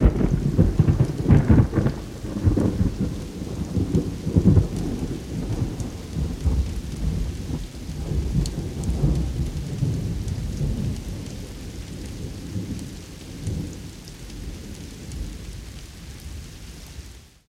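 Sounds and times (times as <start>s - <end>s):
thunder crack with low rumble: 0.0s - 16.6s.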